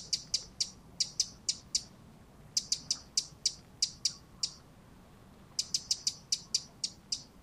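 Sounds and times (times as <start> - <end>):
Eurasian wren Troglodytes troglodytes giving sharp high clicking tacks: 0.0 - 1.9, 2.6 - 4.6, 5.6 - 7.3.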